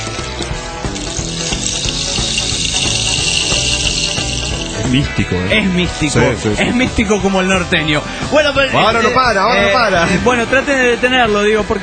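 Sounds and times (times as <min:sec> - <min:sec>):
tiny seeds trickling through a tipped rain stick: 0:00.0 - 0:05.1
speech: 0:04.9 - 0:11.8.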